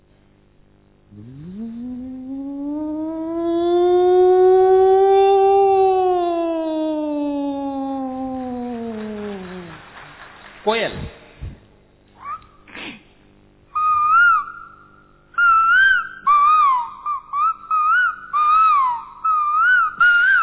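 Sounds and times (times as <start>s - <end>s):
speech: 1.1s - 1.5s
voice imitating a factory siren: 1.1s - 9.8s, 13.8s - 14.8s, 15.4s - 20.4s.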